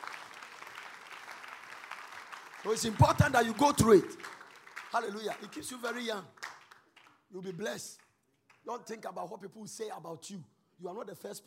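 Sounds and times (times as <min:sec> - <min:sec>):
crowd applauding: 0:00.0 - 0:08.7
speech: 0:02.6 - 0:06.4, 0:07.3 - 0:08.0, 0:08.6 - 0:11.4.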